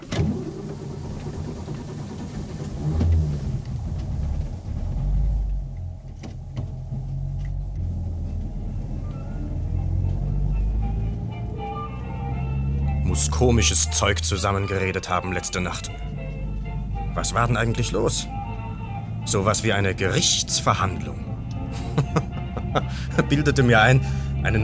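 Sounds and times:
car engine rumble driving off after clutch repair: 0:00.0 - 0:24.6
speech: 0:13.2 - 0:16.2, 0:17.2 - 0:18.4, 0:19.3 - 0:21.3, 0:23.0 - 0:24.6
laughter: 0:21.7 - 0:23.7.

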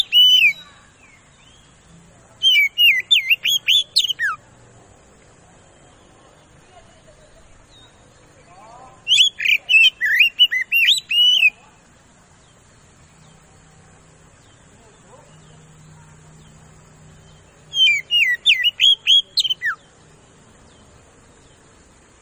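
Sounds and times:
Oriental magpie-robin singing fast loud whistled lure song: 0:00.0 - 0:01.1, 0:02.4 - 0:04.4, 0:09.0 - 0:11.6, 0:17.6 - 0:19.9.

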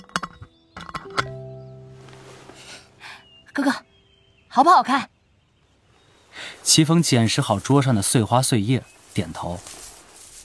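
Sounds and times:
lid closing on a glass jar holding flowers: 0:00.0 - 0:01.4
glass jar clinks and knocks: 0:00.0 - 0:01.5
glass jar ringing tone: 0:00.0 - 0:02.1
speech: 0:03.6 - 0:03.9, 0:04.5 - 0:05.1, 0:06.6 - 0:09.8.

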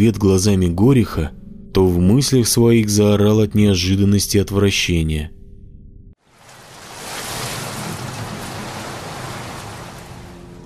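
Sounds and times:
speech: 0:00.0 - 0:05.4
steady rainfall: 0:06.2 - 0:10.6.

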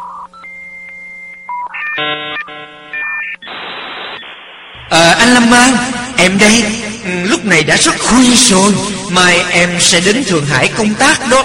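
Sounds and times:
telephone beeps before a voicemail message: 0:00.0 - 0:04.4
harsh buzzing telephone tone: 0:00.4 - 0:07.2
speech: 0:05.2 - 0:11.4.

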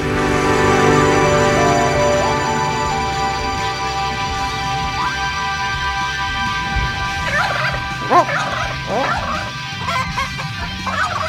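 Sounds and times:
steady sustained tonal backing: 0:00.0 - 0:09.6
chickens clucking and fowl gobbling: 0:07.2 - 0:11.2.

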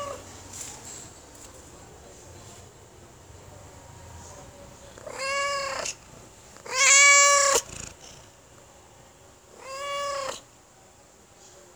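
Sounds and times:
domestic cat meowing: 0:05.0 - 0:06.0, 0:06.6 - 0:07.8, 0:09.6 - 0:10.4.

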